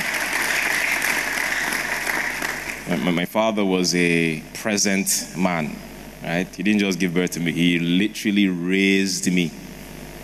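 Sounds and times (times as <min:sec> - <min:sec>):
audience applause: 0:00.0 - 0:03.0
speech: 0:03.0 - 0:09.7.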